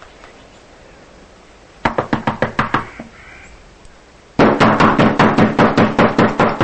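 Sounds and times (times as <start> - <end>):
knocking on a door: 1.9 - 2.9, 4.4 - 6.6.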